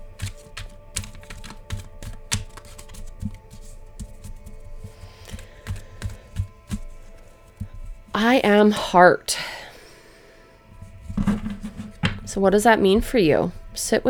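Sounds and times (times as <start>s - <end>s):
deck of cards shuffled with clicks and papery riffle: 0.0s - 9.0s, 10.8s - 12.4s
speech: 8.2s - 9.5s, 12.4s - 14.0s.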